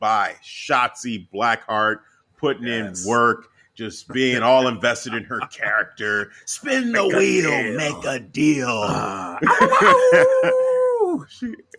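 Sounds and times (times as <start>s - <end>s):
speech: 0.0s - 10.5s, 11.3s - 11.7s
laughter: 4.1s - 5.7s, 6.9s - 8.2s, 8.8s - 10.9s
man imitating a female wrestler's howl: 8.8s - 11.3s.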